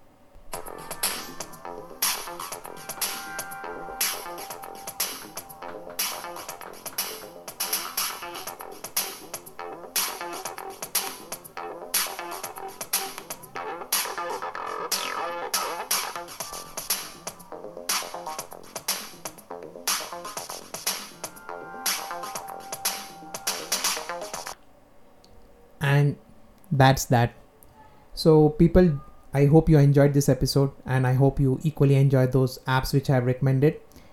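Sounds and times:
upbeat electronic music generated by a music app: 0:00.5 - 0:24.6
speech: 0:26.8 - 0:27.4, 0:28.2 - 0:33.8.

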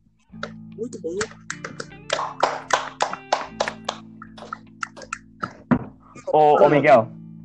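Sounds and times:
speech: 0:00.3 - 0:02.9, 0:06.3 - 0:07.2
round of hand clapping: 0:00.4 - 0:05.8.

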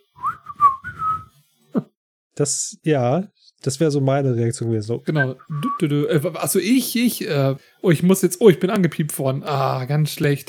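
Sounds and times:
woman whistling a wavering run of notes: 0:00.2 - 0:01.3, 0:05.2 - 0:05.8
speech: 0:01.8 - 0:10.4.

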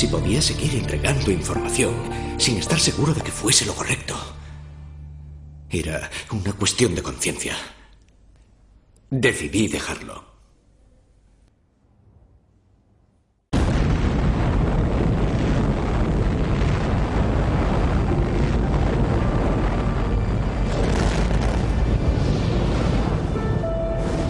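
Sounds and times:
speech: 0:00.0 - 0:04.4, 0:05.7 - 0:07.8, 0:09.1 - 0:10.3
Soviet atomic bomb explosion roar: 0:13.6 - 0:24.2.

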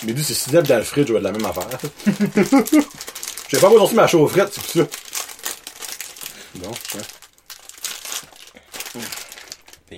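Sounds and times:
speech: 0:00.0 - 0:05.1, 0:06.6 - 0:07.2, 0:09.0 - 0:09.2
plastic snack package crinkling as it is handled and opened: 0:00.0 - 0:09.9
laughter: 0:02.0 - 0:02.9.

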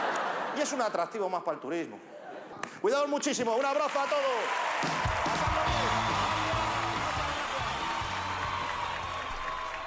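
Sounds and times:
speech: 0:00.6 - 0:02.2, 0:02.8 - 0:06.0
crowd clapping: 0:03.6 - 0:09.8.

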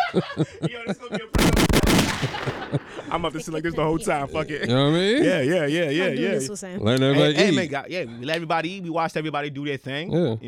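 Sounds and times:
speech: 0:00.1 - 0:10.4
gunshot sound effects like an automatic weapon: 0:01.4 - 0:04.2.

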